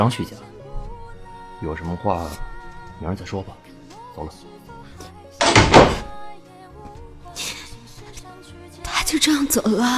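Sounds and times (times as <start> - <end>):
speech: 0.0 - 0.5, 1.6 - 3.6, 4.2 - 4.7, 9.1 - 9.9
door being shut as someone walks out: 5.4 - 6.2.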